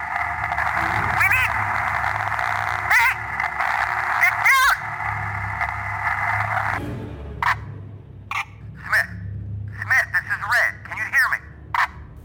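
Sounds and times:
radio transmission static hiss through a headset: 0:00.0 - 0:06.8, 0:08.3 - 0:09.1, 0:09.8 - 0:11.9.

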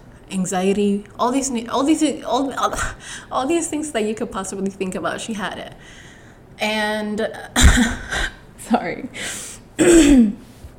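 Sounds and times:
speech: 0:00.3 - 0:10.4
throat clearing: 0:09.8 - 0:10.4.

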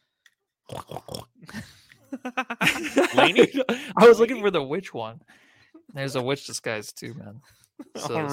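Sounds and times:
person imitating pig snorts and grunts: 0:00.7 - 0:01.3
laughter: 0:01.5 - 0:04.4
speech: 0:01.6 - 0:05.4, 0:06.0 - 0:08.3.

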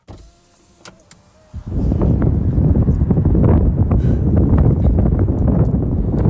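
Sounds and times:
car power window whirring: 0:00.0 - 0:02.8
wind roaring through open car window: 0:00.2 - 0:06.2.

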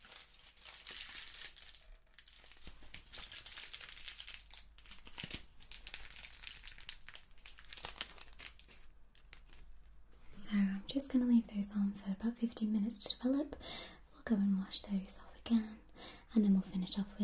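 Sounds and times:
aluminium foil folded and crinkled around hair in a salon: 0:00.0 - 0:09.8
speech: 0:11.0 - 0:17.2.

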